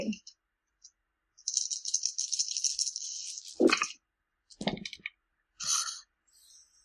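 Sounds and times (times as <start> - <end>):
dice rattling in a cup or hand during a game: 1.4 - 3.9
dice clattering down onto a table during a game: 1.4 - 5.1.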